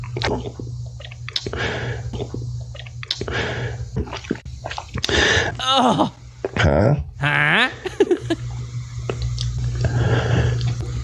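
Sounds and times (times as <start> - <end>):
wet squishy gulping: 0.0 - 7.1, 8.4 - 10.9
steady low hum: 0.0 - 11.0
speech: 0.2 - 0.8, 1.4 - 2.4, 5.6 - 7.0
person exclaiming: 5.6 - 8.0
laughter: 7.2 - 8.5.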